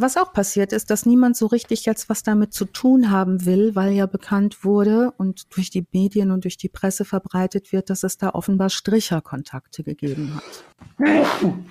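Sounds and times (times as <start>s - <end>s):
speech: 0.0s - 11.6s
loud sneeze: 10.1s - 11.6s.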